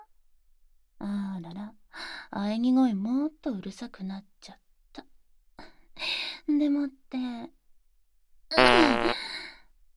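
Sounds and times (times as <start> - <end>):
speech: 2.3 - 5.1, 6.5 - 7.6, 8.5 - 9.3
fart: 8.6 - 9.2.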